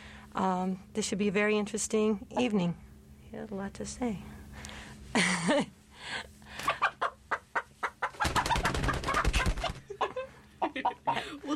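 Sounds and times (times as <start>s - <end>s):
speech: 0.4s - 4.4s, 5.2s - 6.3s
Barred Rock hen clucking: 6.6s - 11.2s.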